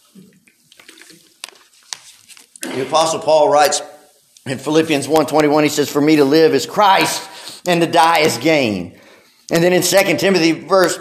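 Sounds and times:
person sipping and gulping water: 0.0s - 2.9s
speech: 2.8s - 10.9s.

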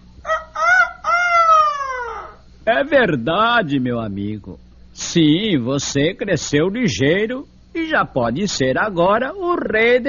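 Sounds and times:
rooster crowing: 0.2s - 2.5s
speech: 2.7s - 10.0s.

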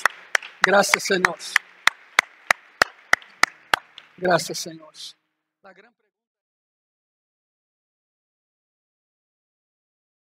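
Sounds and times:
congregation clapping in a steady rhythm: 0.0s - 4.7s
speech: 0.6s - 1.6s, 4.2s - 6.0s.

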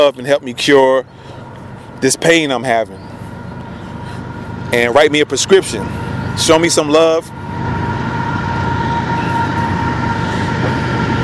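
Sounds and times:
speech: 0.0s - 1.3s, 2.0s - 3.1s, 4.7s - 7.4s
faint sustained whine: 0.0s - 11.2s
train rumbling past: 3.2s - 11.2s.

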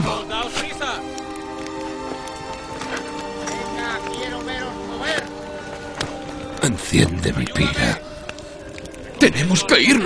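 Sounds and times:
horses' hooves clip-clopping as horses are let loose: 0.1s - 6.8s
speech: 6.9s - 8.0s, 9.2s - 10.0s.

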